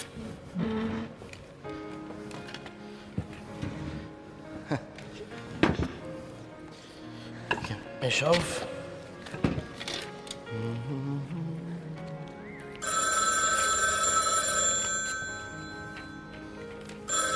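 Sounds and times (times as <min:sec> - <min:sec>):
low musical tones: 0:00.0 - 0:12.9, 0:14.1 - 0:17.3
speech: 0:08.0 - 0:08.7
old-fashioned telephone bell ringing: 0:12.8 - 0:16.4, 0:17.0 - 0:17.3.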